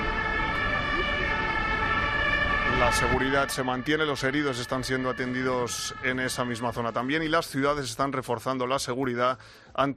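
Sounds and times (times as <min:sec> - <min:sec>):
low traffic rumble: 0:00.0 - 0:07.7
ambulance sirens at a cordoned-off market area: 0:00.0 - 0:08.9
speech: 0:02.8 - 0:09.9.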